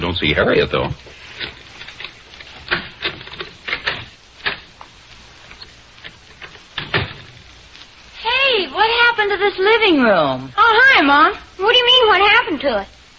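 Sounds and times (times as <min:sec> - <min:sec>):
speech: 0:00.1 - 0:01.5, 0:09.2 - 0:13.0
adhesive tape pulled and wrapped around an old baseball bat: 0:01.2 - 0:08.0.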